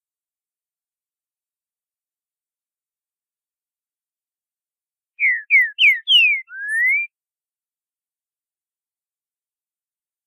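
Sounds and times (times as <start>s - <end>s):
green-winged saltator whistled song in boiadeiro style: 5.2s - 7.1s.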